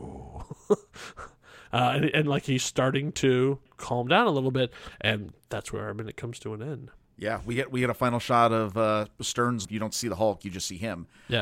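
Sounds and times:
person imitating a low rumbling growl: 0.0s - 0.6s
speech: 0.7s - 11.4s.

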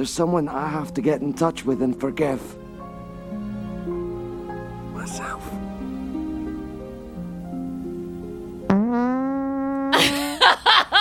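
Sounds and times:
speech: 0.0s - 2.6s
long buzzy fart: 8.7s - 10.0s
laughter: 10.0s - 10.9s.

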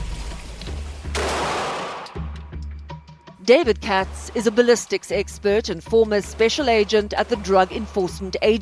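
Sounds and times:
12-gauge shotgun blast in Kafue National Park: 1.1s - 2.1s
speech: 3.5s - 8.6s.

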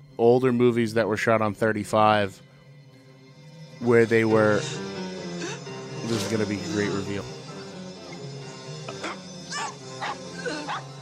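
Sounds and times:
speech: 0.2s - 2.5s, 3.8s - 4.9s, 6.1s - 7.4s
dogs barking in short sharp barks and yips: 8.9s - 11.0s.

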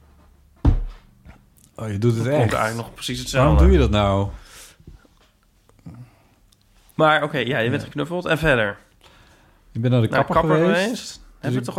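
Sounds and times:
head knocking against a tabletop: 0.6s - 1.0s
speech: 1.8s - 4.4s, 7.0s - 8.8s, 9.8s - 11.7s.

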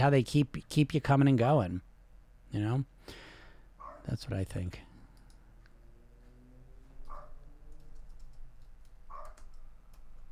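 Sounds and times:
speech: 0.0s - 1.9s, 2.5s - 3.2s, 4.0s - 4.9s
steady low hum: 0.0s - 10.3s
dog barking short sharp yaps: 3.8s - 4.1s, 7.1s - 7.4s, 9.1s - 9.4s.

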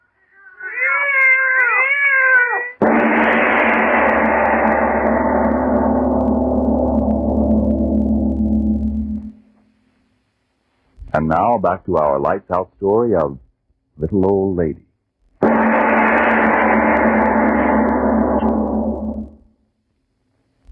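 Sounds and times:
cats yowling and caterwauling: 0.0s - 2.8s
heavy sustained droning rumble: 2.8s - 9.5s, 15.4s - 19.5s
speech: 11.2s - 13.4s, 14.0s - 14.8s.

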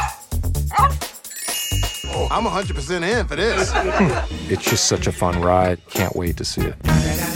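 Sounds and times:
dog barking and yipping at a film red carpet event: 0.0s - 1.1s
speech: 2.3s - 7.2s
laughter: 3.2s - 5.6s.

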